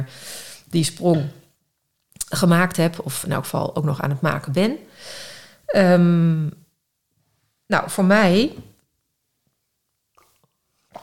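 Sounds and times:
speech: 0.0s - 1.4s, 2.3s - 6.6s, 7.7s - 8.7s
person sipping and swallowing water: 9.9s - 11.0s.

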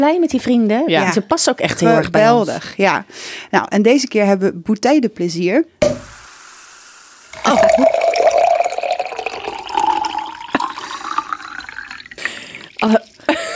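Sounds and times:
speech: 0.0s - 6.2s, 12.8s - 13.1s
champagne bubbles fizzing and crackling: 7.2s - 13.4s
champagne splashes and drips: 7.4s - 13.3s
champagne poured into a glass: 7.4s - 13.4s.

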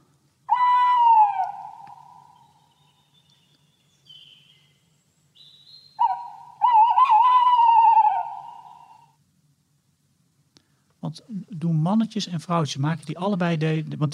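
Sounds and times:
tawny owl territorial song hooting: 0.0s - 4.7s, 5.4s - 9.2s
speech: 11.2s - 14.1s.

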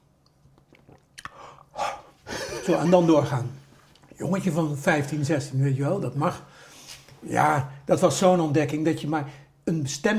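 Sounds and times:
mouth clicks: 0.2s - 2.0s
speech: 2.7s - 3.6s, 4.2s - 10.1s.

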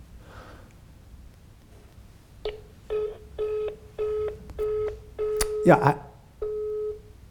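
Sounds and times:
telephone busy signal of short evenly spaced electronic tone pulses: 2.5s - 7.0s
speech: 5.6s - 6.0s.

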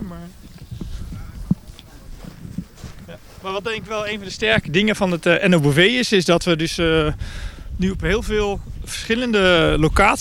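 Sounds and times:
faint noise: 0.0s - 10.2s
footsteps crunching outdoors: 0.4s - 5.8s
speech: 3.4s - 10.2s.

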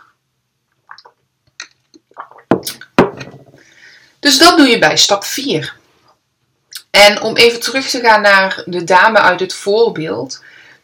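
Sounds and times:
slurping and swallowing while sipping water: 0.8s - 3.0s
glass being handled and set down: 2.5s - 3.6s
speech: 4.2s - 5.8s, 7.0s - 10.5s.

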